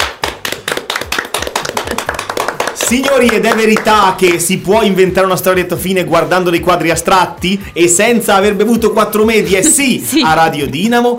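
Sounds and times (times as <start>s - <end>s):
audience applause after a storytelling performance: 0.0s - 4.0s
speech: 2.9s - 11.1s.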